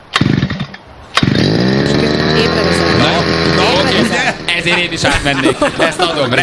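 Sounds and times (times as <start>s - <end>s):
brush cutter two-stroke engine being pull-started and idling: 0.2s - 6.2s
laughter: 3.1s - 6.4s
speech: 3.9s - 6.4s.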